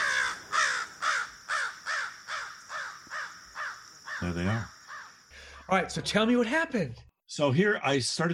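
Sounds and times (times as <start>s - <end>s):
crow cawing: 0.0s - 5.8s
speech: 4.2s - 4.8s, 5.7s - 8.3s.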